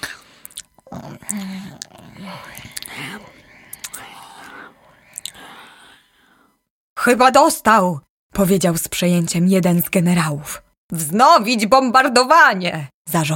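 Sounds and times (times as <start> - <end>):
murmured breathy vocal sounds: 0.0 - 6.7
sharp mouth clicks: 0.4 - 5.5
wet lip-smacking and chewing made by a voice imitating someone eating: 0.4 - 5.5
speech: 0.9 - 3.4, 7.0 - 13.3.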